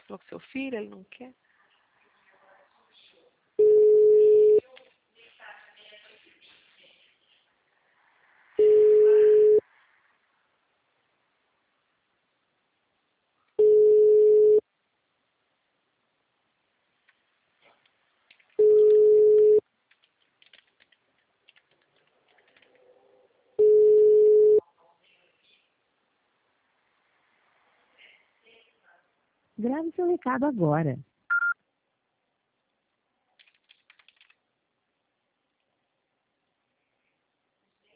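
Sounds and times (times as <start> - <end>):
speech: 0.1 - 1.4, 29.6 - 31.1
telephone ringback tone while placing a call: 3.6 - 4.6, 8.6 - 9.6, 13.6 - 14.6, 18.6 - 19.6, 23.6 - 24.6.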